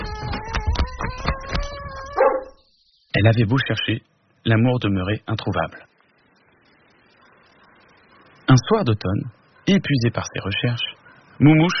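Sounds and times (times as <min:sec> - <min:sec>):
dog howling: 0:01.3 - 0:02.6
dog barking: 0:02.2 - 0:02.6
speech: 0:03.2 - 0:05.9, 0:08.5 - 0:11.7.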